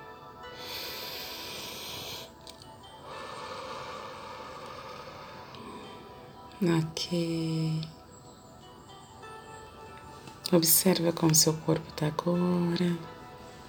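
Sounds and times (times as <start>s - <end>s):
slow deep breath in and out: 0.4s - 6.6s
speech: 6.6s - 8.0s, 10.5s - 13.1s.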